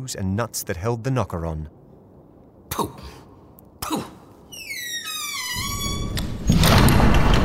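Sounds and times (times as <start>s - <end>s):
speech: 0.0s - 1.8s, 2.8s - 3.2s
heavy house door slamming shut: 5.2s - 7.4s.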